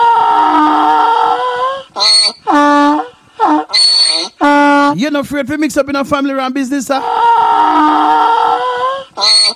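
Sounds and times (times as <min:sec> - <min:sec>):
donkey braying: 0:00.0 - 0:05.1, 0:07.0 - 0:09.5
speech: 0:05.1 - 0:08.2, 0:09.2 - 0:09.4.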